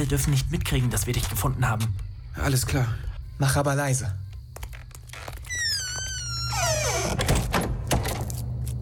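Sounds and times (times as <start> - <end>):
speech: 0.0 - 4.2
door swinging shut with a long high squeaky creak: 4.7 - 8.4.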